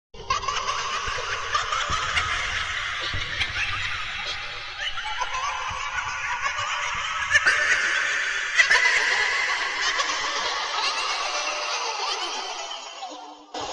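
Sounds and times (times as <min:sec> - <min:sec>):
goblins laughing: 0:00.2 - 0:13.7.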